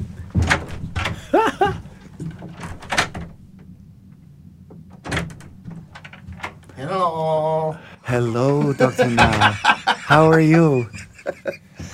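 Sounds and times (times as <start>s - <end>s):
door opening with a creaking squeal: 0.0s - 3.7s, 4.7s - 6.8s
door shutting with a solid thud: 0.3s - 1.4s, 2.2s - 3.4s, 4.9s - 6.6s
laughter: 1.2s - 1.8s, 8.4s - 11.9s
door handle rattling: 2.2s - 3.6s, 4.8s - 6.6s
speech: 8.2s - 11.1s.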